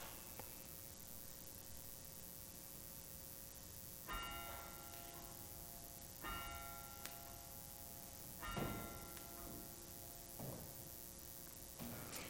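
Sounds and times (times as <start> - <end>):
steady hiss: 0.0 - 12.2
church bell tolling to call people to prayer: 4.1 - 11.0.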